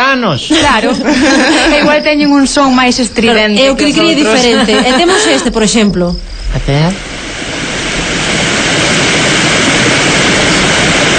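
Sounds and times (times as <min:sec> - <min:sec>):
speech: 0:00.1 - 0:07.2
laughter: 0:00.5 - 0:02.4, 0:03.6 - 0:05.7
roar of rushing water at water mills: 0:06.5 - 0:11.1.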